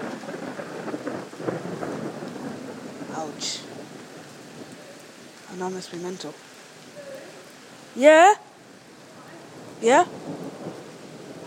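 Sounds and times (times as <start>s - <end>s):
low rumble of thunder: 0.0s - 6.4s, 9.2s - 11.4s
heavy rain hissing and pattering: 0.0s - 11.4s
speech: 3.2s - 3.7s, 5.6s - 6.5s, 8.0s - 8.4s, 9.8s - 10.2s.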